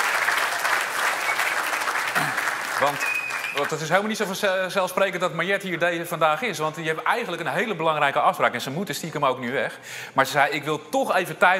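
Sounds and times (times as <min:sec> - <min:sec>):
audience applauding: 0:00.0 - 0:04.2
speech: 0:02.8 - 0:11.5.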